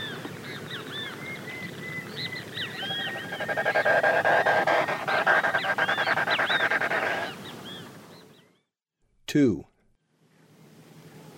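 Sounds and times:
South American snipe giving pulsed notes in the Eastern Lowlands: 0:01.6 - 0:07.4.

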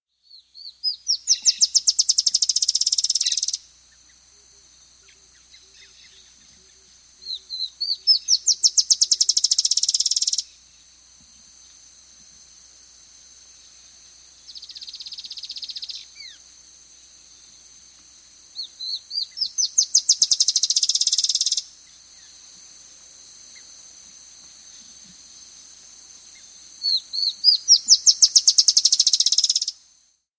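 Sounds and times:
Chestnut-shouldered antwren singing in South America: 0:00.1 - 0:10.9, 0:13.6 - 0:16.5, 0:18.5 - 0:22.5, 0:26.3 - 0:29.8.

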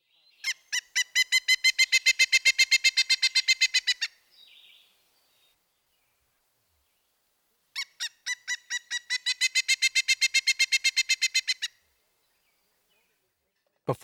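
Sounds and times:
pileated woodpecker calling: 0:00.3 - 0:05.6, 0:07.7 - 0:12.6.

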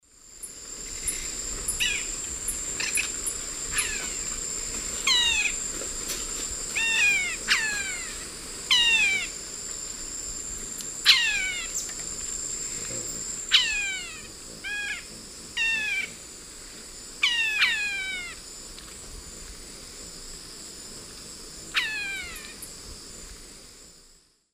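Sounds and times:
Dendrocolaptes picumnus pair calling in South American eastern lowlands: 0:01.0 - 0:04.4, 0:05.0 - 0:05.7, 0:06.7 - 0:09.4, 0:11.0 - 0:12.0, 0:12.6 - 0:16.2, 0:17.2 - 0:18.4, 0:21.7 - 0:22.7.

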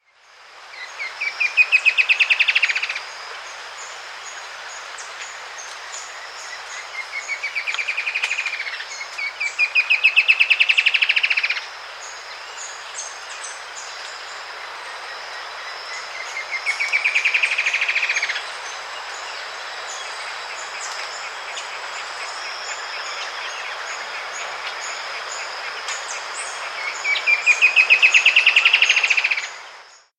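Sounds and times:
Pygmy Antwren in South America: 0:00.7 - 0:29.6.

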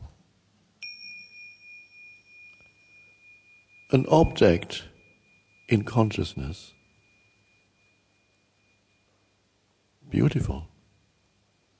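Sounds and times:
bell ringing during a meditation: 0:00.8 - 0:10.0
speech: 0:03.9 - 0:04.9, 0:05.7 - 0:06.8, 0:10.1 - 0:10.7.

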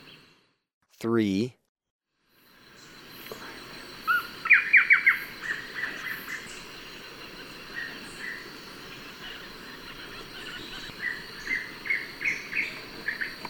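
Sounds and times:
speech: 0:01.0 - 0:01.6
Blackish Antbird song in Ecuador: 0:02.5 - 0:13.4.

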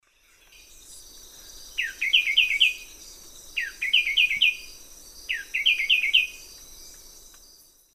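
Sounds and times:
Henicorhina leucosticta singing in the eastern lowlands of South America: 0:00.1 - 0:07.6.

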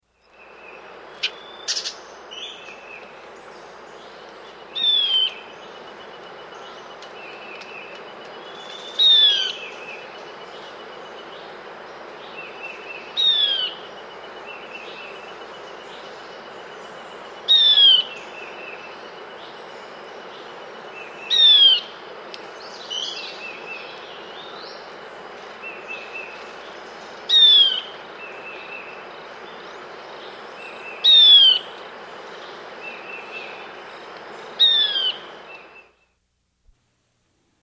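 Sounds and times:
Tawny-Faced Gnatwren calling in South America: 0:01.2 - 0:03.1, 0:04.3 - 0:10.1, 0:12.4 - 0:13.8, 0:17.4 - 0:19.1, 0:20.5 - 0:22.0, 0:22.9 - 0:29.1, 0:29.8 - 0:33.7, 0:34.5 - 0:36.2.

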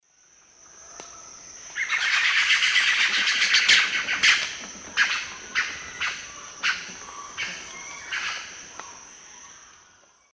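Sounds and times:
Cacicus haemorrhous group calling in South American Eastern Lowlands: 0:01.8 - 0:09.0.

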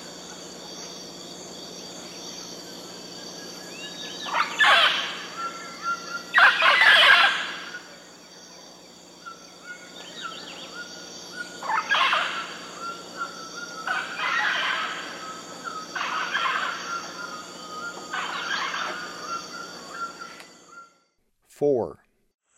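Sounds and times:
steady hum: 0:00.0 - 0:20.8
Mealy amazon grating squawk bursts in the eastern lowlands of South America: 0:04.2 - 0:07.8, 0:11.6 - 0:15.2, 0:15.8 - 0:17.4, 0:18.1 - 0:19.4
speech: 0:21.6 - 0:22.0.

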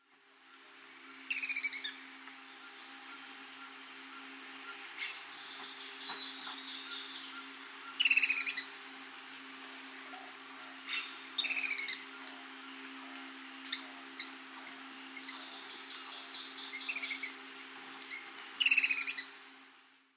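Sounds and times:
Sepia-capped Flycatcher Leptopogon calling: 0:00.4 - 0:20.0.

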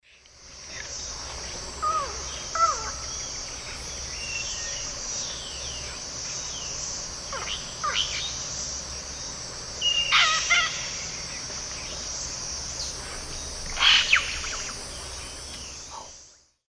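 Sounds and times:
Cacicus cela calling in South America Eastern Lowlands: 0:01.8 - 0:06.0, 0:07.3 - 0:08.4, 0:09.8 - 0:12.1, 0:12.8 - 0:16.2.

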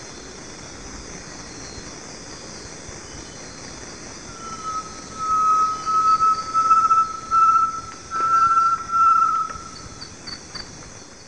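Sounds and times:
high insect drone: 0:00.0 - 0:11.2
great tinamou singing low whistles in the eastern lowlands of South America: 0:04.3 - 0:10.1.

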